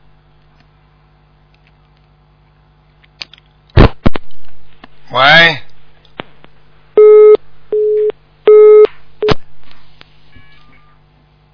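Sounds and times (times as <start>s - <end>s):
speech: 5.1s - 5.6s
telephone busy signal buzzing tone: 7.0s - 9.4s.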